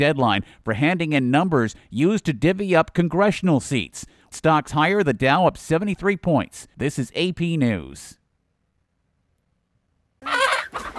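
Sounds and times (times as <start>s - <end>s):
speech: 0.0s - 8.2s
backyard chickens clucking and squawking: 10.2s - 10.9s.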